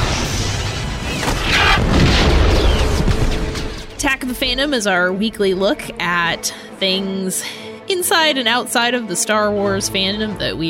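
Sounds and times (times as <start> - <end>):
blaster shots: 0.0 - 3.9
explosion booms: 0.0 - 4.0
speech: 4.0 - 10.6.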